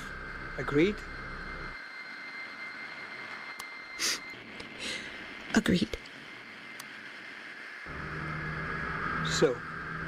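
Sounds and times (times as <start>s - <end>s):
aircraft engines droning in flight: 0.0s - 10.0s
speech: 0.6s - 1.2s, 5.5s - 6.0s, 9.4s - 9.7s.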